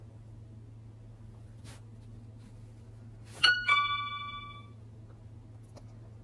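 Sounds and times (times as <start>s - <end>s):
quiet hum: 0.0s - 6.2s
two-note ding-dong chime: 3.4s - 4.8s.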